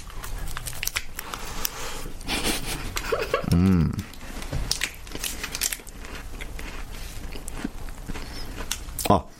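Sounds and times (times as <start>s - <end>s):
crispy chocolate and strawberry mille-feuille pastry crunching when bitten: 0.0s - 1.8s, 2.9s - 9.2s
speech: 3.6s - 4.0s.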